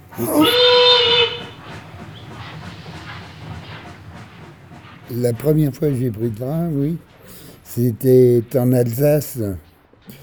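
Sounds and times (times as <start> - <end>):
speech: 0.2 - 0.7, 5.1 - 7.1, 7.8 - 10.2
whistle blast blown by a railway worker to signal a train's departure: 0.2 - 1.6.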